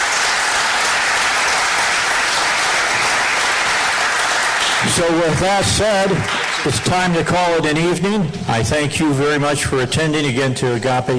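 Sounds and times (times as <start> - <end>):
applause from a sizable audience at an evening event at a church: 0.0 - 8.1
speech: 5.0 - 11.1.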